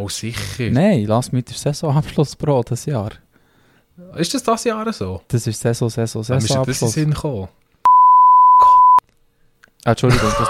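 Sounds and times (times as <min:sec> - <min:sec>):
speech: 0:00.0 - 0:03.3, 0:04.0 - 0:07.6, 0:09.8 - 0:10.4
censor bleep: 0:07.9 - 0:09.0.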